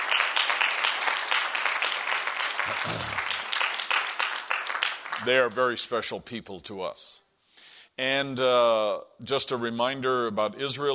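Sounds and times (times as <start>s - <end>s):
audience applause: 0.0s - 5.3s
speech: 2.8s - 3.3s, 5.2s - 7.2s, 8.0s - 10.9s.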